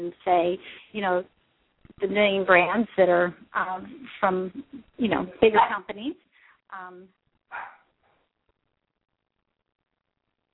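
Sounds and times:
speech: 0.1s - 7.7s
small dog giving high-pitched barks and yaps: 7.5s - 7.8s.

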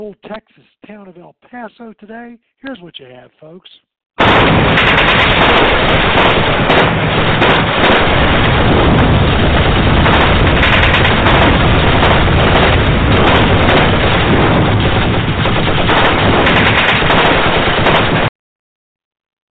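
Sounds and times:
speech: 0.0s - 9.7s
rapid machine-gun bursts in the streets across the river from El Paso: 4.2s - 18.3s
scattered single gunshots in the streets across the river from El Paso: 4.2s - 18.3s.

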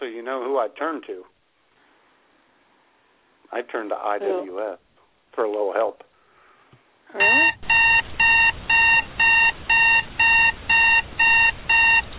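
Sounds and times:
speech: 0.2s - 1.4s, 3.5s - 6.1s, 7.1s - 7.6s
electronic alarm clock beeping high-pitched tones: 7.2s - 12.1s.

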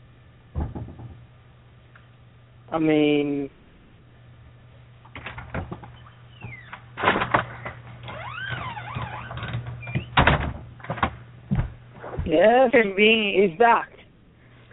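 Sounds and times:
low steady hum: 0.0s - 14.7s
door banging and clunking shut: 0.5s - 1.2s, 5.2s - 12.3s
speech: 2.7s - 3.6s, 12.7s - 13.9s
door creaking open with squeaky hinges: 5.1s - 12.3s.

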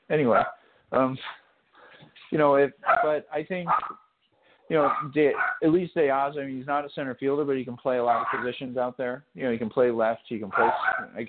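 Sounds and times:
speech: 0.1s - 1.4s, 2.3s - 4.0s, 4.7s - 11.2s
dog barking in short sharp yaps: 0.3s - 0.6s, 2.8s - 4.0s, 4.8s - 5.6s, 8.1s - 8.5s, 10.5s - 11.1s.

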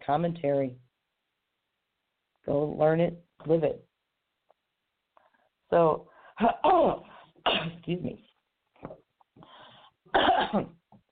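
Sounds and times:
speech: 0.0s - 0.8s, 2.5s - 3.9s, 5.7s - 9.5s, 10.1s - 10.8s
person coughing: 7.4s - 7.9s, 10.1s - 10.8s.

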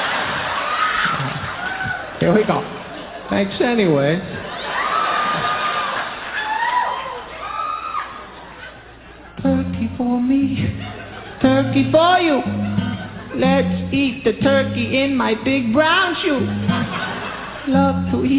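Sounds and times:
lively audience cheering and clapping: 0.0s - 3.3s, 4.4s - 8.7s
laughter: 0.0s - 3.4s, 4.3s - 7.1s, 10.5s - 13.9s, 16.1s - 18.3s
speech: 2.2s - 4.4s, 11.6s - 12.6s, 13.4s - 17.0s, 17.7s - 18.3s
excited shouts: 4.6s - 8.4s.

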